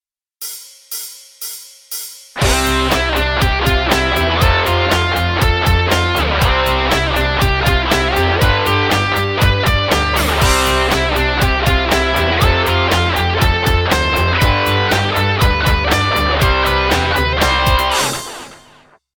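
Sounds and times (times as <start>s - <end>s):
drum sampler drum samples: 0.4s - 18.9s.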